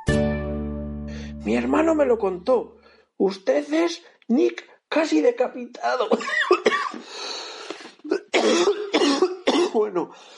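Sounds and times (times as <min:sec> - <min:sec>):
rough breathy stretch between coughing fits: 0:01.1 - 0:01.4, 0:02.8 - 0:03.2, 0:07.0 - 0:08.1, 0:10.1 - 0:10.3
speech: 0:01.4 - 0:06.9, 0:08.4 - 0:08.8, 0:09.8 - 0:10.3
person coughing harshly at range: 0:05.9 - 0:10.0.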